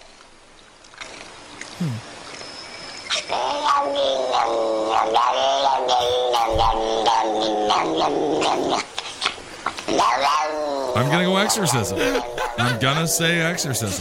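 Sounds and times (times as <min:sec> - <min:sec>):
speech: 0:01.8 - 0:02.1, 0:03.3 - 0:09.0, 0:09.9 - 0:13.9
cat caterwauling with warbling yowl and growls: 0:03.1 - 0:13.0
laughter: 0:11.0 - 0:13.9.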